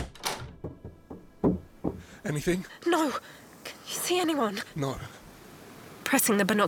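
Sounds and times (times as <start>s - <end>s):
latch or lock clicks and knocks: 0.0s - 1.4s
door closing with a solid thunk: 0.0s - 2.0s
speech: 2.2s - 5.2s, 6.1s - 6.6s.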